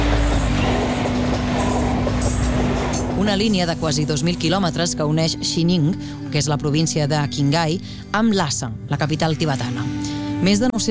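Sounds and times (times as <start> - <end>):
high hissing: 0.0 - 3.6
train rolling on tracks of the Qinghai-Tibet railway: 0.0 - 4.9
speech: 3.3 - 10.8.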